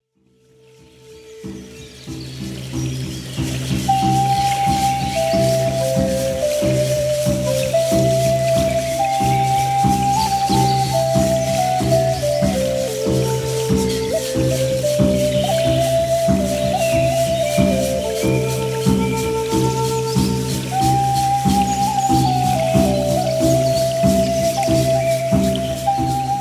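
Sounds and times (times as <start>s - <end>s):
flute: 0.4s - 26.4s
drum: 1.4s - 26.4s.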